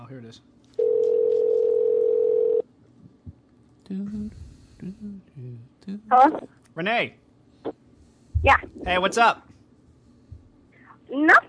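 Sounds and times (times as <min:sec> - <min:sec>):
speech: 0:00.1 - 0:00.8, 0:03.9 - 0:07.8, 0:08.4 - 0:09.5, 0:11.1 - 0:11.4
telephone dial tone: 0:00.8 - 0:02.6.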